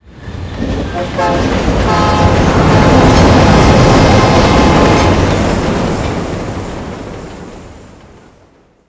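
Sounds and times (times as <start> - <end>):
train passing on overpass: 0.0 - 8.8.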